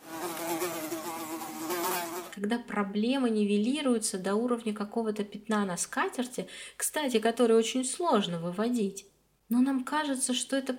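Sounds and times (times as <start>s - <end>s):
fly buzzing: 0.0s - 2.4s
speech: 2.4s - 10.7s.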